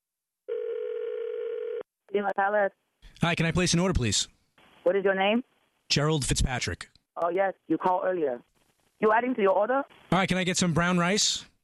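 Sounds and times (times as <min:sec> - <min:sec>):
telephone ringing with a steady electronic buzz: 0:00.5 - 0:01.8
speech: 0:02.1 - 0:11.5.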